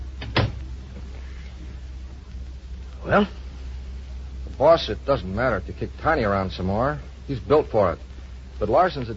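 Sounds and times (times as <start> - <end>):
door swinging shut with a rattle and thud: 0.2 - 0.6
speech: 3.0 - 3.4, 4.6 - 9.1.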